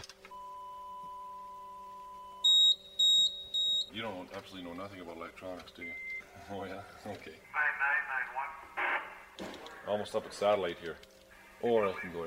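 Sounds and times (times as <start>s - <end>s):
radio scanner deviation alarm short high beeps: 0.3s - 3.9s
radio scanner deviation alarm steady electronic tone: 0.3s - 4.0s
speech: 4.0s - 7.8s, 9.9s - 12.2s.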